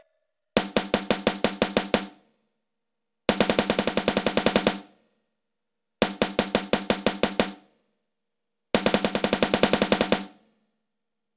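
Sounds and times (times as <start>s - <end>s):
drums playing: 0.6s - 2.3s, 3.3s - 5.0s, 6.1s - 7.7s, 8.8s - 10.5s.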